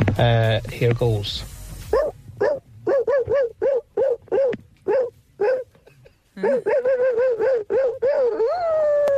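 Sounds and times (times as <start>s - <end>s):
speech: 0.2s - 1.5s
man imitating dog barks and howl: 1.9s - 5.8s, 6.4s - 9.1s.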